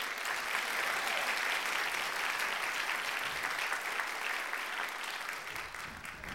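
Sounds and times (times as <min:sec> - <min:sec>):
crowd applauding after a song: 0:00.0 - 0:06.3.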